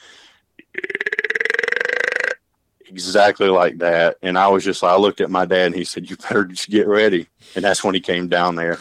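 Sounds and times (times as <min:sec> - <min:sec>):
person imitating a whitetail buck grunt: 0:00.6 - 0:02.4
speech: 0:02.9 - 0:08.8.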